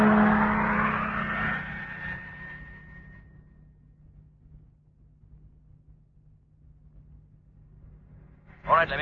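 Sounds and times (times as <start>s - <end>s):
truck engine rumbling and driving off: 0.0s - 3.0s
speech: 8.8s - 9.0s.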